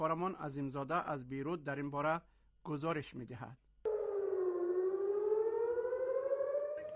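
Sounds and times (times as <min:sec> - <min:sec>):
speech: 0:00.0 - 0:03.6
missile attack warning siren wailing in settlements around the Gaza Strip: 0:03.9 - 0:06.9.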